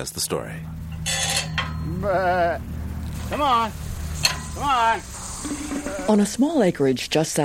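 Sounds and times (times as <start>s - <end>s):
speech: 0.0s - 1.2s, 1.8s - 3.9s, 4.6s - 7.4s
low outdoor hum: 0.0s - 7.4s
herd of white-faced sheep bleating on an acreage in Oklahoma: 1.8s - 3.8s, 4.6s - 6.2s
person calling: 1.8s - 3.8s, 4.5s - 6.3s.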